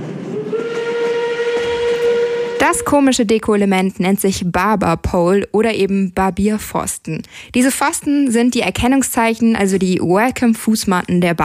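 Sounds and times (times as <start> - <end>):
sustained bright train whistle tone: 0.0 - 3.2
train arriving sound effect rumbling: 0.0 - 3.6
speech: 2.7 - 11.4.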